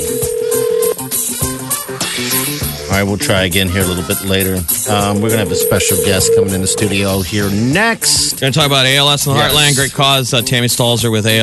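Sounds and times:
telephone dialing beeps: 0.0 - 1.0, 5.4 - 7.0
steady telephone tone: 0.0 - 1.2, 5.2 - 7.2
busy musical background: 0.0 - 11.4
speech: 3.0 - 11.4.

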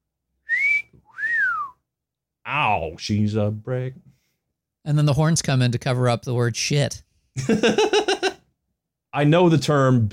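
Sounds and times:
wolf whistle: 0.4 - 1.8
speech: 2.5 - 4.1, 4.8 - 8.2, 9.2 - 10.1
laughter: 7.4 - 8.4.

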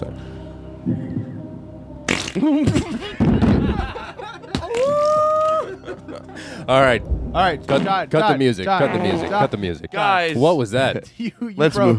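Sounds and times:
fart sound effects: 2.1 - 2.4, 7.6 - 8.1, 8.8 - 9.5
speech: 2.4 - 3.2, 6.1 - 11.9
laughter: 2.4 - 6.7, 8.2 - 9.8.

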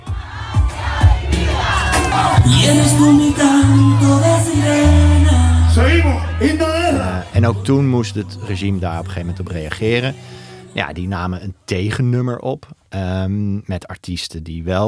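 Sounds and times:
large crowd of protesters chanting a slogan in the street: 0.0 - 10.8
speech: 7.4 - 14.8.

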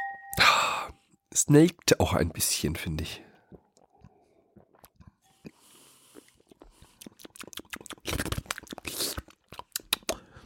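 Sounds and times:
speech: 1.4 - 3.3
slurping and swishing beer: 3.4 - 10.4
wet lip smacking while tasting beer: 3.5 - 10.4
mouth clicks while tasting beer: 7.0 - 10.2.

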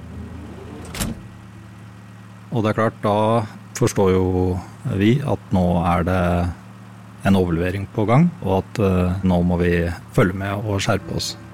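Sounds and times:
steady low engine-like rumble: 0.0 - 11.5
car trunk being opened with latch release: 0.1 - 1.4
speech: 2.5 - 6.6, 7.2 - 11.5.

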